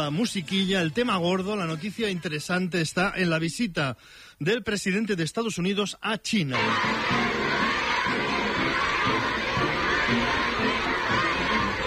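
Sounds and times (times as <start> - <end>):
speech: 0.0 - 7.6
crowd of voices at a head of state's arrival in China: 6.6 - 11.8.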